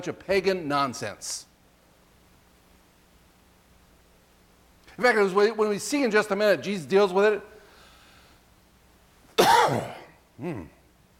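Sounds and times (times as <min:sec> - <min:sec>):
speech: 0:00.0 - 0:01.5, 0:05.0 - 0:07.5, 0:09.7 - 0:10.8
person clearing throat: 0:09.4 - 0:10.8
person coughing: 0:09.4 - 0:10.8.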